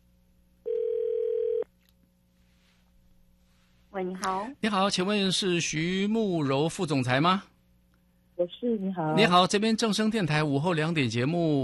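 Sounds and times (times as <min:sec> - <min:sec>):
telephone ringback tone while call connects: 0:00.7 - 0:01.6
speech: 0:04.0 - 0:07.5, 0:08.4 - 0:11.6.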